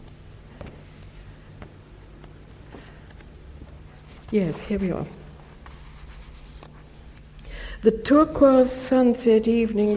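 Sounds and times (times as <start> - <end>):
low steady hum: 0.0 - 9.9
pages of a poetry book being turned: 2.2 - 7.2
speech: 4.3 - 5.2, 7.8 - 9.9.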